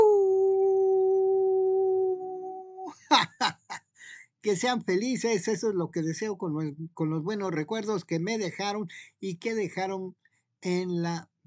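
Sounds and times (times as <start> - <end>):
voice letting out a long wolf-like howl: 0.0 - 2.6
speech: 4.4 - 11.4.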